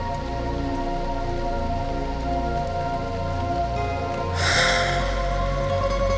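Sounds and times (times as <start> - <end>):
rain pattering on a hard surface: 0.0 - 6.1
low hum: 4.4 - 6.1.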